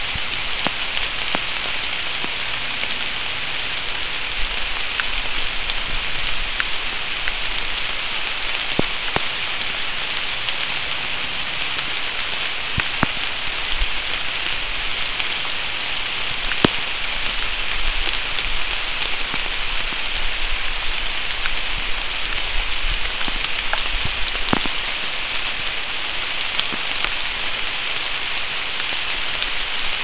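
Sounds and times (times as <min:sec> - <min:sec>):
rain: 0:00.0 - 0:30.0.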